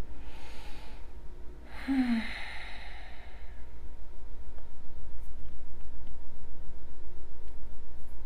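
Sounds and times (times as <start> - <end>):
deep breathing during a yoga flow: 0.0 - 3.9
low hum: 0.0 - 8.2.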